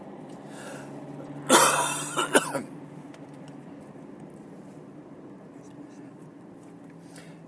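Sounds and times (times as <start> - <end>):
loud cough: 1.5 - 2.6
throat clearing: 1.5 - 2.6.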